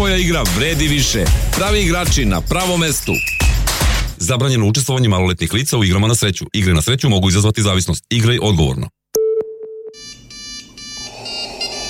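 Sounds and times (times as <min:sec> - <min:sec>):
speech: 0:00.1 - 0:03.4, 0:04.2 - 0:09.0
electronic ringtone of an incoming video call: 0:09.9 - 0:11.8.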